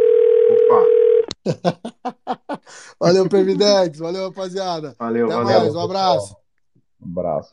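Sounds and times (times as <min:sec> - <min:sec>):
telephone dial tone: 0:00.0 - 0:01.2
laughter: 0:01.4 - 0:04.0
speech: 0:01.5 - 0:02.0, 0:03.0 - 0:06.4, 0:07.2 - 0:07.5.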